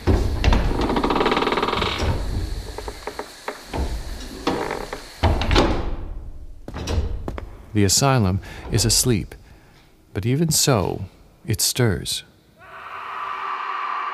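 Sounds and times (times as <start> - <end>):
heavy old wooden doors grinding and creaking open: 0.0 - 7.6
speech: 7.8 - 9.4, 10.1 - 12.3.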